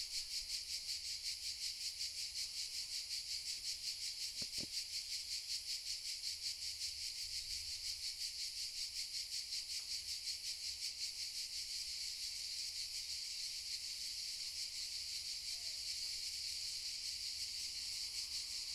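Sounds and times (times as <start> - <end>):
cicada chorus buzzing: 0.0 - 18.7.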